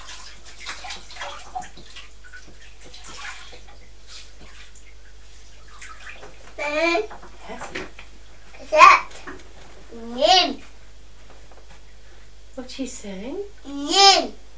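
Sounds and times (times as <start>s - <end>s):
water splashing as a child rinses hands and face: 0.0s - 9.4s
child speaking: 6.6s - 7.1s, 8.6s - 9.2s, 9.9s - 10.7s, 13.6s - 14.4s
speech: 12.8s - 14.4s.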